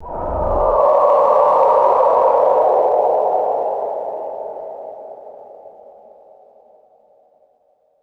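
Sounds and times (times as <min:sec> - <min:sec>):
eerie ethereal ghostly wail: 0:00.0 - 0:03.9.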